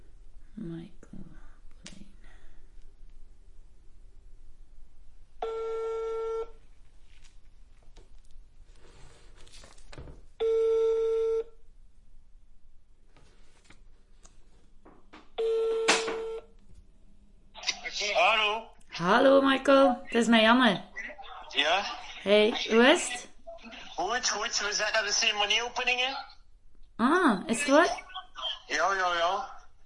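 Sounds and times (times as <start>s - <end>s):
faint noise: 0.0s - 29.8s
speech: 0.6s - 1.3s, 20.1s - 20.9s, 21.6s - 23.2s, 24.2s - 26.3s, 27.0s - 28.0s, 28.7s - 29.5s
telephone ringback tone: 5.4s - 6.6s, 10.4s - 11.5s, 15.4s - 16.5s.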